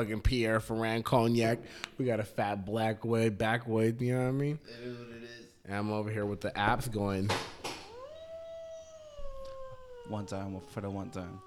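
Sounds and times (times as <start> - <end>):
speech: 0.0 - 7.6, 10.1 - 11.4
faint noise: 0.0 - 11.4
person howling like a wolf: 7.8 - 11.4.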